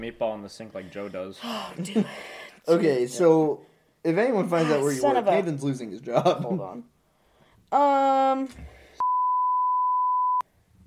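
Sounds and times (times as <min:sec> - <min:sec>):
speech: 0:00.0 - 0:06.9, 0:07.7 - 0:08.8
censor bleep: 0:09.0 - 0:10.4.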